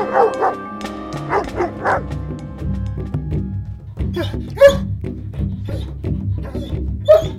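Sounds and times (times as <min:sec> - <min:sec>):
dog barking: 0:00.0 - 0:00.6, 0:01.3 - 0:02.0, 0:04.2 - 0:04.9, 0:05.7 - 0:07.3
musical background: 0:00.0 - 0:07.3.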